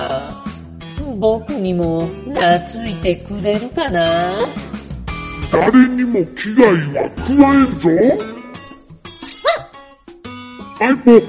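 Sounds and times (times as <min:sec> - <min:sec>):
speech: 0:01.2 - 0:04.7, 0:05.5 - 0:08.4, 0:10.8 - 0:11.2
dog barking: 0:09.2 - 0:09.7.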